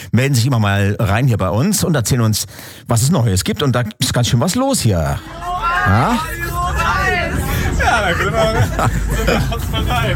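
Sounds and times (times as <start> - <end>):
speech: 0.1 - 7.0, 7.8 - 10.1
dense crowd chatter inside a moving bus: 5.2 - 10.1
people laughing inside a moving bus: 5.2 - 10.1
steady low engine rumble of a moving bus: 5.2 - 10.1.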